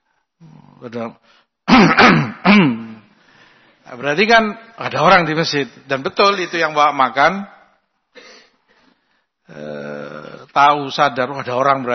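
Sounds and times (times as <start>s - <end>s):
speech: 0.8s - 2.8s, 3.9s - 7.6s, 9.5s - 9.8s, 10.6s - 11.9s
person clearing throat with deliberate ahem sounds: 1.7s - 3.1s.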